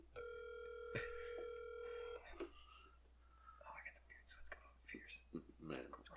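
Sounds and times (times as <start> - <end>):
electronic phone ring tone over a speakerphone: 0.2 - 2.3
speech: 5.1 - 6.1.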